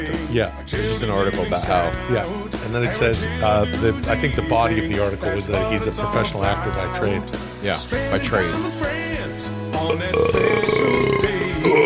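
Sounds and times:
speech: 0.1s - 11.8s
long loud burp after drinking beer: 9.8s - 11.8s.

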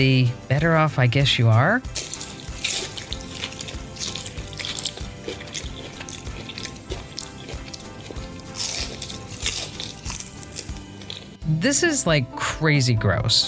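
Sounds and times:
speech: 0.0s - 2.1s, 11.6s - 13.4s
woman slurping and chewing black bean noodles: 1.8s - 11.4s.

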